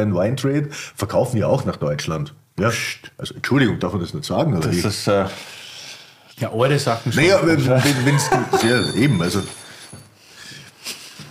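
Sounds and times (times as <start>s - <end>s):
speech: 0.0s - 5.6s, 6.4s - 9.6s
laughter: 7.3s - 9.1s
small metal ring dropping onto a hard surface: 8.6s - 10.1s.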